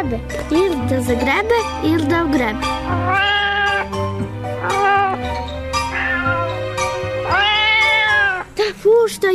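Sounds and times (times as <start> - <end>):
speech: 0.0 - 3.4, 9.0 - 9.3
cat meowing loudly: 2.9 - 4.0, 4.6 - 8.6.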